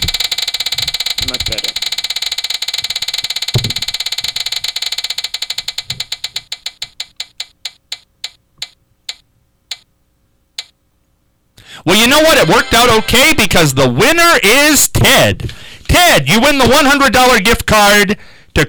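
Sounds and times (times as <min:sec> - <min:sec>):
prize wheel spinning and clicking: 0:00.0 - 0:07.5, 0:12.0 - 0:14.0
speech: 0:01.3 - 0:01.9, 0:11.9 - 0:18.6.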